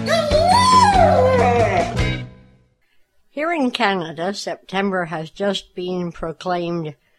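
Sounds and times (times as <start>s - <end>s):
guide dog whimpering: 0.1s - 2.1s
speech: 3.5s - 7.1s.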